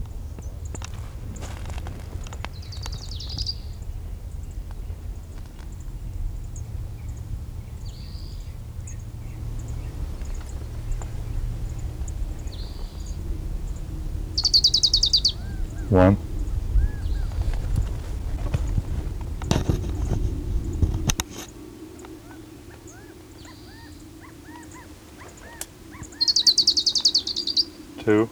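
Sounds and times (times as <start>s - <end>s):
steady low rumble: 0.0s - 21.2s
orange-crowned warbler singing on the divide between two canyons: 0.0s - 28.2s
speech: 15.9s - 16.2s.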